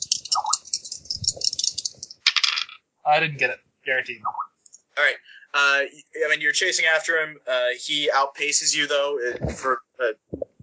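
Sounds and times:
dice rolled during a tabletop role-playing game: 0:00.0 - 0:02.8
speech: 0:03.1 - 0:10.5.

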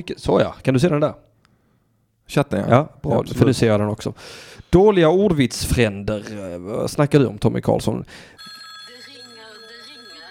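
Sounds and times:
speech: 0:00.0 - 0:01.3, 0:02.3 - 0:08.5
telephone ringing with a steady electronic tone: 0:08.4 - 0:10.2.

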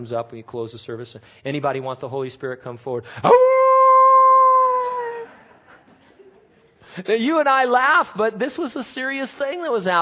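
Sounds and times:
speech: 0:00.0 - 0:03.7, 0:07.0 - 0:09.9
voice imitating a dog's howl: 0:03.3 - 0:05.3
laughter: 0:05.0 - 0:06.8.

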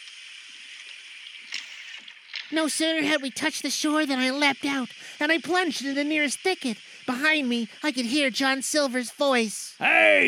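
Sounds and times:
water splash: 0:00.8 - 0:03.3
speech: 0:02.5 - 0:10.2.

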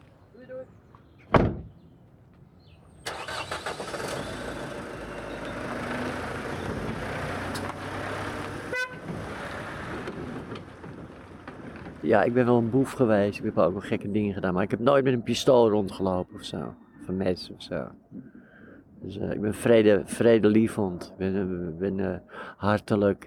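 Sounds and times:
car door shutting: 0:01.3 - 0:01.8
car engine starting and running as the car drives: 0:03.1 - 0:12.7
speech: 0:12.1 - 0:18.3, 0:19.0 - 0:23.2.

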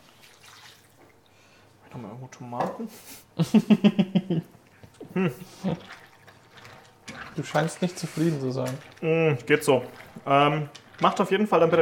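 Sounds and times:
water pouring into a cooking pot: 0:00.0 - 0:01.4, 0:05.4 - 0:11.8
speech: 0:02.0 - 0:04.5, 0:05.2 - 0:06.0, 0:07.4 - 0:11.8
laughter: 0:03.4 - 0:04.5.

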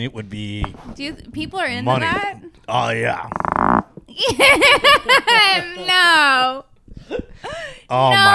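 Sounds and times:
speech: 0:00.0 - 0:08.3
fart sound: 0:03.1 - 0:04.1
laughter: 0:04.2 - 0:06.2.

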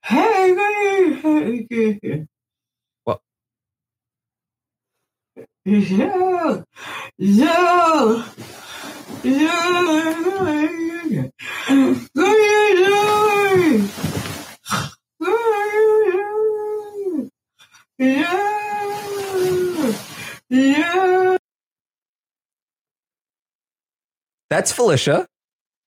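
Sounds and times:
woman singing and moaning in her sleep: 0:00.0 - 0:02.3, 0:05.4 - 0:17.4, 0:18.0 - 0:21.4
speech: 0:01.4 - 0:02.3, 0:03.1 - 0:03.3, 0:05.6 - 0:14.9, 0:18.0 - 0:18.5, 0:24.5 - 0:25.3.

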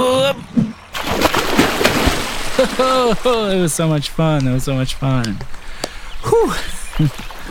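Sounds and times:
water churning and sloshing: 0:00.4 - 0:04.4, 0:06.8 - 0:07.4
body splashing into water off a rope swing: 0:01.0 - 0:03.4
laughter: 0:02.5 - 0:03.6
speech: 0:02.8 - 0:05.6, 0:06.2 - 0:07.3.

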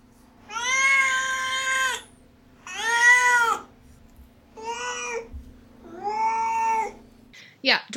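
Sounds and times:
faint steady hum: 0:00.0 - 0:07.9
cat meowing with long drawn-out wailing calls: 0:00.5 - 0:02.0, 0:02.6 - 0:03.7, 0:04.6 - 0:07.0
speech: 0:07.6 - 0:07.9.

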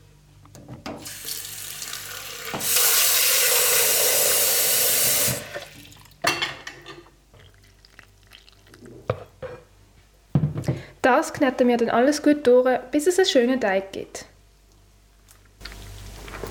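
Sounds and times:
cold water pouring into a large bowl of flour, salt and baking powder: 0:01.0 - 0:06.2, 0:07.5 - 0:08.8
speech: 0:11.1 - 0:14.3.

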